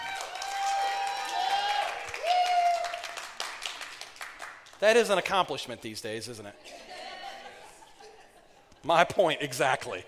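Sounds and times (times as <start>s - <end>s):
brief cheers: 0.0s - 3.7s
crowd applauding: 0.0s - 4.8s
speech: 4.8s - 6.9s, 8.8s - 10.0s
laughter: 6.6s - 10.0s.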